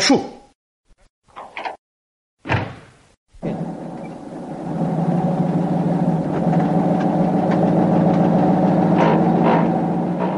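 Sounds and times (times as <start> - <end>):
black open-top Opel Kapitän car engine droning through town streets: 3.4 - 10.3.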